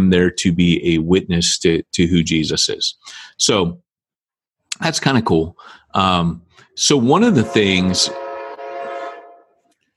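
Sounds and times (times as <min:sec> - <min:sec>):
speech: 0:00.1 - 0:03.8, 0:04.7 - 0:08.2
passing train horn blaring: 0:07.2 - 0:09.7.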